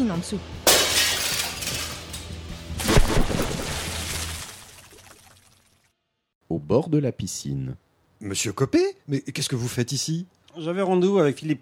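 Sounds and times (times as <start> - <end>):
speech: 0.1 - 0.8, 6.5 - 11.6
scattered glass shards tinkling and rattling down: 0.7 - 2.4
window pane smashing as people jump through the window: 0.7 - 3.4.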